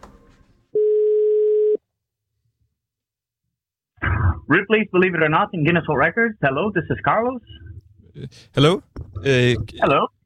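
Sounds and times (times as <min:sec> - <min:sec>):
electronic telephone line beep: 0:00.8 - 0:01.8
speech: 0:04.5 - 0:10.2.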